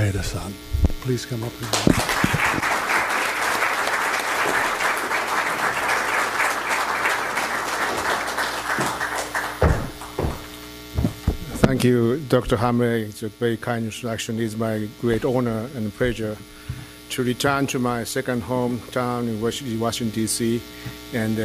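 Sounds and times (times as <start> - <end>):
low electrical hum: 0.0 - 21.4
speech: 0.1 - 2.4, 11.8 - 21.4
warm audience applause welcoming a speaker: 1.6 - 10.5.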